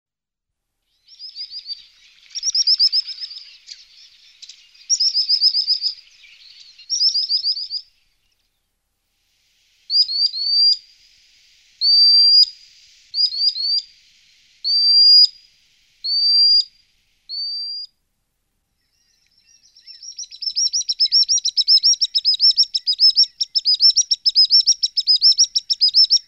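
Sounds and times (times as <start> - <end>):
common sandpiper piping calls: 0.9 - 8.6, 11.8 - 14.0, 14.6 - 17.9, 18.8 - 26.2.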